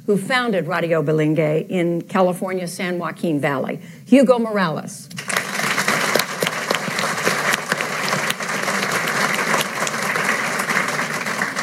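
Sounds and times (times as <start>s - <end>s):
speech: 0.0s - 5.2s
sizable crowd applauding: 5.2s - 11.6s.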